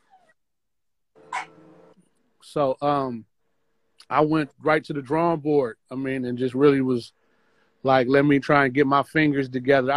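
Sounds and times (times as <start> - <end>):
dog whimpering softly: 0.0 - 0.4, 1.3 - 1.6
speech: 2.4 - 3.3, 4.0 - 7.2, 7.8 - 9.9.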